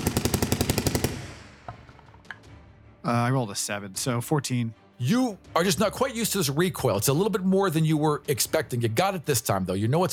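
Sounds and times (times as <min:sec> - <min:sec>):
machine gun firing an entire drum of bullets: 0:00.0 - 0:01.7
speech: 0:03.0 - 0:10.1.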